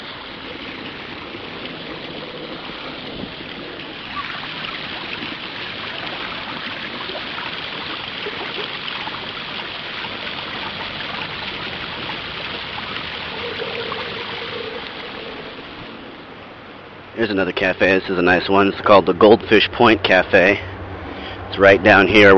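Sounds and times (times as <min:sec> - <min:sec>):
water flowing from a small marble ball fountain: 0:00.0 - 0:20.5
speech: 0:17.2 - 0:20.7, 0:21.6 - 0:22.3.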